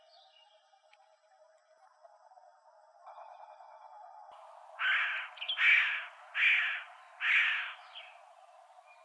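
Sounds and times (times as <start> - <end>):
faint background hiss: 0.0 - 9.0
Williamson's Sapsucker giving rasping nasal calls in Arizona: 4.8 - 8.2.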